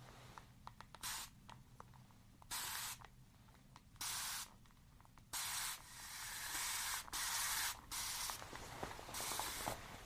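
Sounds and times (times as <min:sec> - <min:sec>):
handheld spray bottle spritzing water on clay: 0:00.9 - 0:01.4, 0:02.5 - 0:03.1, 0:04.0 - 0:04.6, 0:05.3 - 0:08.5, 0:09.1 - 0:09.8.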